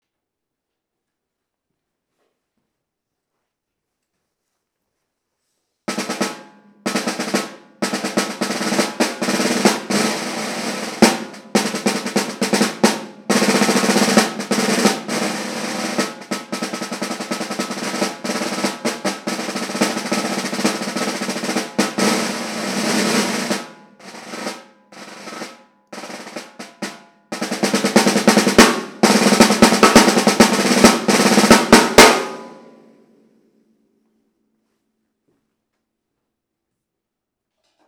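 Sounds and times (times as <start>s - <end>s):
5x14 natural wood snare drum: 5.9s - 32.8s.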